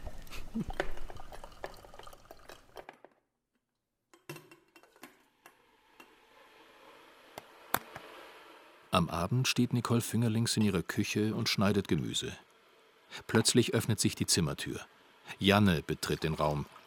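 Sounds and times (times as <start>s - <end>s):
coffee brewed by hand dripping through a filter: 0.0s - 2.9s
speech: 0.6s - 0.8s, 8.9s - 12.4s, 13.1s - 16.8s.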